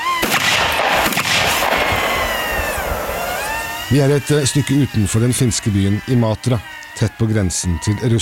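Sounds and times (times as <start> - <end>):
gunshots during shooting practice: 0.0 - 3.9
continuous rushing noise outdoors: 0.0 - 8.1
speech: 3.9 - 8.1.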